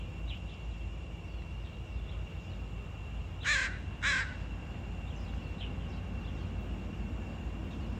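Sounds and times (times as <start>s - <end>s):
faint bird chirps: 0.0s - 6.9s
harsh crow-like bird caws: 3.4s - 4.5s.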